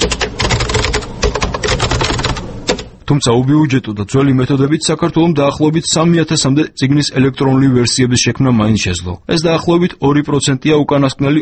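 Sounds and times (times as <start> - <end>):
rapid typing on a computer keyboard: 0.0 - 2.9
speech: 3.1 - 11.4.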